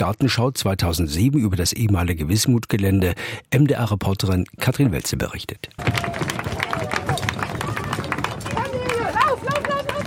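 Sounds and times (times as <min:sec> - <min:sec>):
speech: 0:00.0 - 0:06.5
many feet running on hollow bridge decking: 0:05.8 - 0:10.0.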